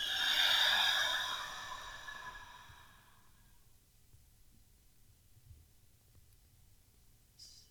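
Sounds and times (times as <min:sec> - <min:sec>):
slow exhale after a held breath during a guided breathing exercise: 0:00.0 - 0:03.3.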